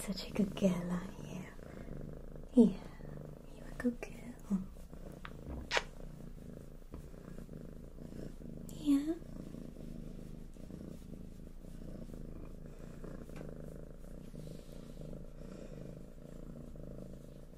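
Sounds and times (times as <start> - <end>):
speech: 0.0 - 1.2, 2.6 - 2.9, 3.8 - 4.7
female seal point Ragdoll kitten purring: 0.0 - 17.5
faint soft rustles: 3.7 - 17.5.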